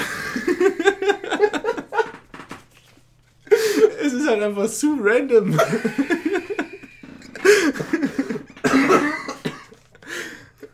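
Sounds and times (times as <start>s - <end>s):
laughter: 0.0s - 2.3s, 5.5s - 8.6s
speech: 4.4s - 6.4s
harsh wet unhealthy coughing fit: 7.0s - 10.7s.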